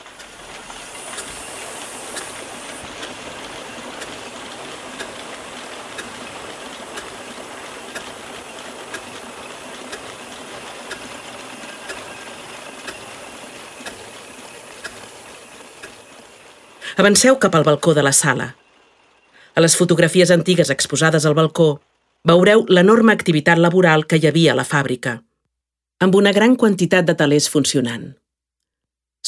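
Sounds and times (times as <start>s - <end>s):
faint regular clicks: 0.0s - 17.0s
factory steam engine flywheel driving a large belt: 0.0s - 21.5s
speech: 17.0s - 18.6s, 19.6s - 25.3s, 26.0s - 28.2s.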